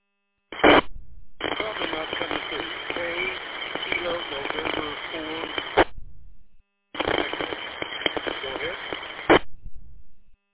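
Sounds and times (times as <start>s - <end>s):
weak noisy ham radio transmission through a repeater: 0.6s - 5.9s, 7.0s - 9.6s.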